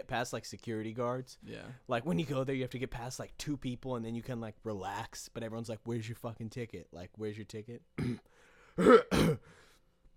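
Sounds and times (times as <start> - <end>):
speech: 0.0 - 9.6
person clearing throat: 8.0 - 9.5.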